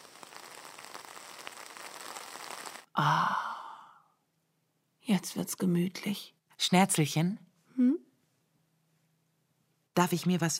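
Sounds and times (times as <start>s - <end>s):
steady rain pattering on a surface: 0.0s - 2.9s
speech: 5.1s - 8.0s, 10.0s - 10.5s.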